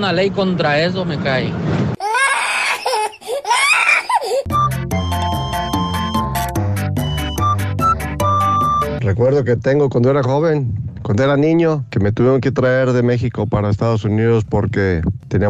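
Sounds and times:
speech: 0.0s - 2.0s, 9.1s - 15.4s
baby crying and screaming: 2.0s - 4.5s
music with a steady rhythmic beat: 4.5s - 9.0s.

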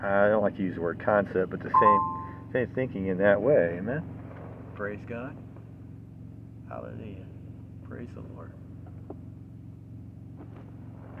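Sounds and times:
speech: 0.0s - 4.2s, 4.8s - 5.4s, 6.7s - 7.3s, 7.9s - 8.6s
low engine hum: 0.0s - 11.1s.

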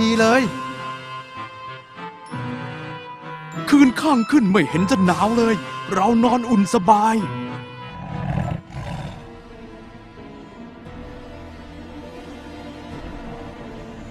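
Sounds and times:
speech: 0.0s - 0.6s, 3.7s - 7.4s
tiger roaring: 7.9s - 9.4s.

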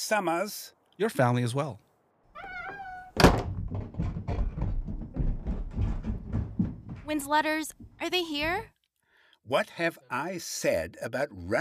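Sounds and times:
speech: 0.1s - 1.9s, 7.1s - 8.8s, 9.5s - 11.5s
door slamming shut: 2.7s - 7.2s.

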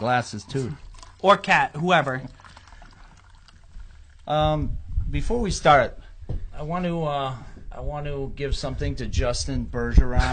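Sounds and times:
speech: 0.0s - 2.4s, 4.3s - 10.3s
drink pouring into a glass: 0.0s - 4.3s.

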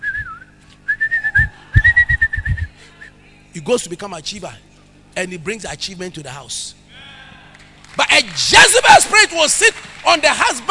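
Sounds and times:
person whistling a bright wavering melody: 0.0s - 3.1s
speech: 3.6s - 6.8s, 8.0s - 10.6s.

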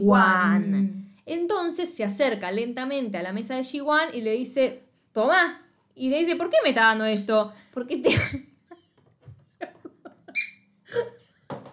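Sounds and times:
speech: 0.0s - 8.5s
dog's squeaky toy squeaking: 8.1s - 8.4s, 10.3s - 10.7s
laughter: 9.6s - 11.2s.

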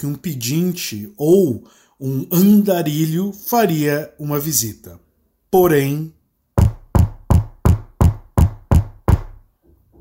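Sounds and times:
speech: 0.0s - 6.2s
firm knocking on a door: 6.6s - 9.9s.

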